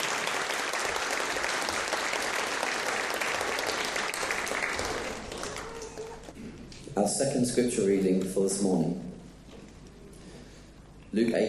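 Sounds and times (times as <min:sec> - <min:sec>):
applause from many people for actors at a church service: 0:00.0 - 0:06.4
speech: 0:07.0 - 0:09.1, 0:11.1 - 0:11.4.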